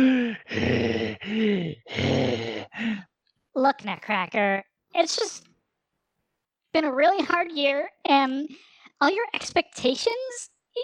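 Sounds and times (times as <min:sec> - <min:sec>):
angry panting breaths: 0:00.0 - 0:03.2
speech: 0:03.8 - 0:05.5, 0:06.8 - 0:10.8.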